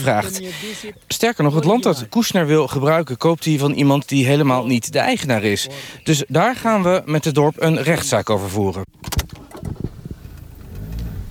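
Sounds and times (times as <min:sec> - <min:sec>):
speech: 0:00.0 - 0:09.2
car driving on a sandy dirt road through woods: 0:08.9 - 0:11.2.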